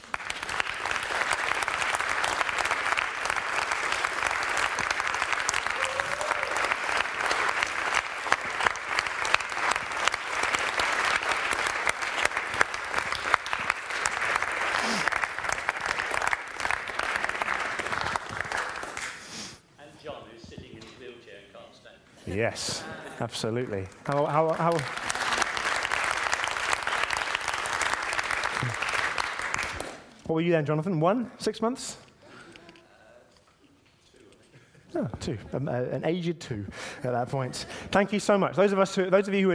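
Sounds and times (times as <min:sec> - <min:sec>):
audience applauding: 0:00.0 - 0:19.2, 0:23.3 - 0:30.2
speech: 0:22.4 - 0:25.1, 0:30.3 - 0:32.0, 0:35.2 - 0:39.5.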